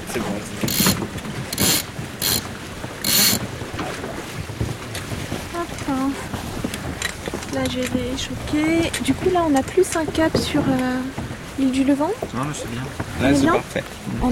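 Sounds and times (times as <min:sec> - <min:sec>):
line running through pulleys while hoisting a sailboat foresail: 0:00.0 - 0:14.3
steady wind noise on a calm sea: 0:00.0 - 0:14.3
speech: 0:00.2 - 0:00.8, 0:07.6 - 0:14.3
sailboat winch ratchet: 0:00.6 - 0:03.5.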